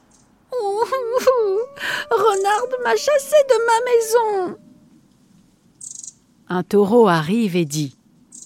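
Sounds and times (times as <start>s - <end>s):
human voice imitating a wolf crying: 0.6s - 4.8s
speech: 2.1s - 4.6s, 6.5s - 8.0s.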